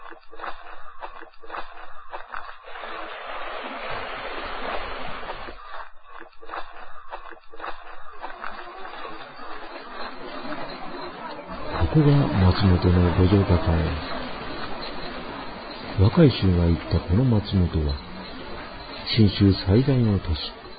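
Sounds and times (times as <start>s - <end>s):
river flowing under a road bridge into Matsumoto: 2.7s - 5.6s, 8.8s - 20.7s
faint indistinct voices: 10.2s - 20.7s
speech: 12.0s - 14.2s, 16.0s - 18.1s, 19.1s - 20.6s.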